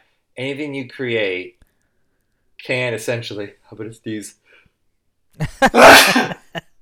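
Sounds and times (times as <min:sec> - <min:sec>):
speech: 0:00.4 - 0:01.6, 0:02.6 - 0:04.4, 0:05.4 - 0:06.4
loud sneeze: 0:05.8 - 0:06.4.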